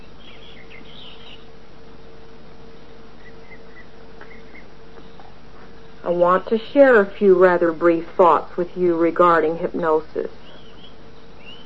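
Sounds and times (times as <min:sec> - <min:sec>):
scattered high bird chirps and short song phrases: 0:00.0 - 0:01.6, 0:02.8 - 0:06.6, 0:10.4 - 0:11.6
speech: 0:06.0 - 0:10.4.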